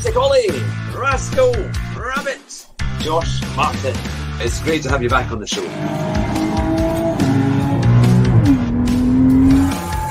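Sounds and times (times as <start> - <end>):
speech: 0.0 - 6.4
race car engine in a racing simulator video game at Bathurst: 5.7 - 10.0.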